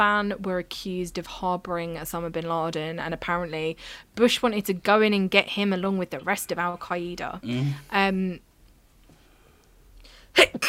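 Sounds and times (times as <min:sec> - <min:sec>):
speech: 0:00.0 - 0:08.5, 0:10.4 - 0:10.6
person sneezing: 0:07.5 - 0:07.8, 0:10.4 - 0:10.6.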